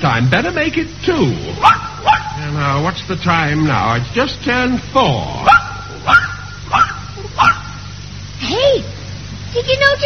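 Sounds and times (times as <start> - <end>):
speech: 0.0 - 6.8, 9.5 - 10.0
dog barking: 1.6 - 2.4, 5.4 - 7.9.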